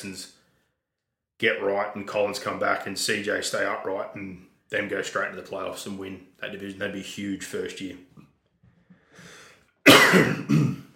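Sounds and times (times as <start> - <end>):
speech: 0.0 - 0.4, 1.4 - 8.2, 10.1 - 10.7
person coughing harshly: 9.8 - 10.9.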